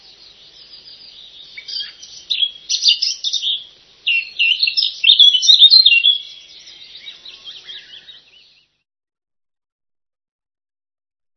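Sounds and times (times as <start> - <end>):
Eurasian blackcap singing: 0.0 - 8.7.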